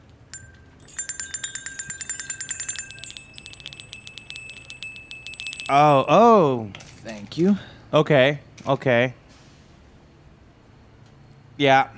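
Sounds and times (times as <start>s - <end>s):
bright metallic bell rung to signal the next round: 0.4s - 7.0s
speech: 5.7s - 9.2s, 11.6s - 11.9s.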